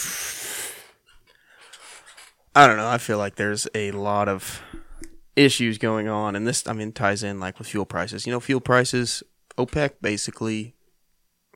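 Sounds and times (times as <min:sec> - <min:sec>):
big breath drawn in: 0:00.0 - 0:02.3
speech: 0:02.6 - 0:04.8, 0:05.4 - 0:10.8.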